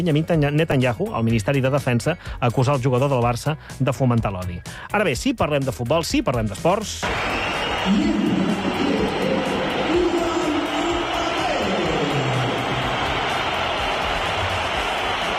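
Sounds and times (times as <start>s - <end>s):
speech: 0.0s - 9.2s
huge stadium crowd whistling and booing: 7.0s - 15.3s.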